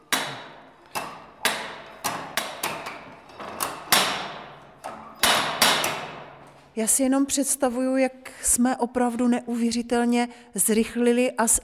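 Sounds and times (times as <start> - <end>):
universal knife and axe sharpening and scythe peening machine tapping: 0.0 - 6.5
speech: 6.8 - 11.6.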